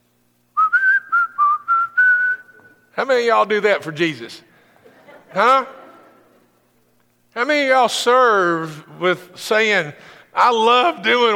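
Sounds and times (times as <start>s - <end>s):
person whistling a tune: 0.6s - 2.8s
speech: 3.0s - 4.5s, 5.3s - 5.8s, 7.4s - 11.3s
laughter: 4.7s - 6.6s.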